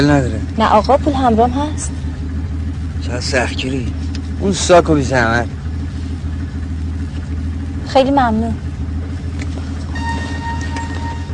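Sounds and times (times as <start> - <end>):
speech: 0.0 - 2.1, 3.0 - 5.6, 7.9 - 8.7
taxi engine rumbling: 0.0 - 11.3.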